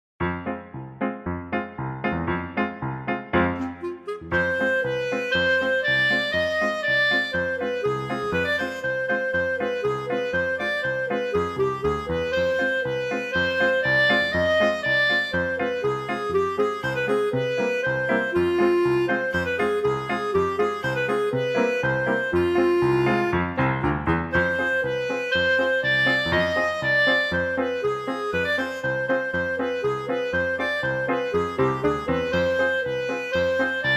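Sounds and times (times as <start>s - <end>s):
klezmer piano: 0.2s - 33.9s.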